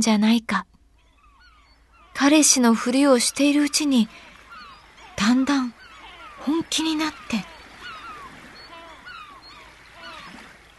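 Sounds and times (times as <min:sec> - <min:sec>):
speech: 0:00.0 - 0:00.7, 0:02.2 - 0:04.3, 0:05.2 - 0:05.8, 0:06.4 - 0:07.5
seabirds calling in short, falling cries: 0:00.8 - 0:10.7
steady wash of sea: 0:01.0 - 0:10.7.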